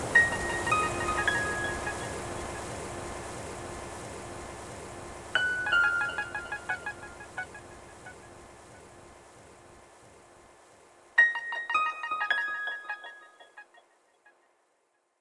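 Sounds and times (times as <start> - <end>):
ringtones: 0.2 - 3.6, 5.4 - 8.2, 11.2 - 13.8.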